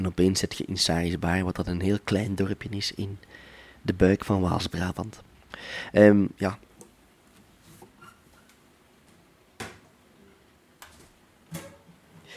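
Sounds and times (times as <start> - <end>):
speech: 0.0 - 6.7
guitar being picked up and handled: 6.7 - 12.3.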